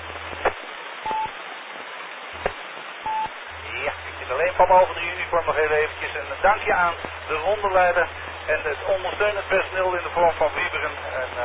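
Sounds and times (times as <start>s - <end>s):
narrow-band phone-line hiss: 0.0s - 1.4s, 2.4s - 9.8s
telephone dialing tones: 1.1s - 1.4s, 3.1s - 3.4s
speech: 4.6s - 11.4s.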